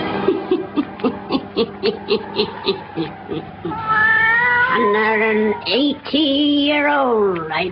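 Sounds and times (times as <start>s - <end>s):
laughter: 0.2s - 3.9s
black cat yowling: 1.3s - 5.8s
speech: 5.6s - 7.6s.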